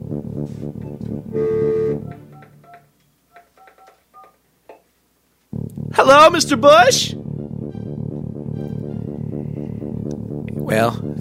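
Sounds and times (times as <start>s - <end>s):
telephone keypad dialing tones: 1.8s - 4.4s
speech: 6.1s - 7.2s, 10.7s - 11.1s.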